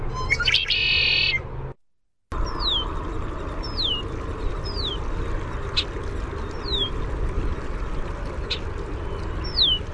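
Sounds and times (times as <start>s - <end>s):
red-winged blackbird descending whistled contact song: 0.1s - 1.4s
constant low background hum: 2.3s - 9.9s.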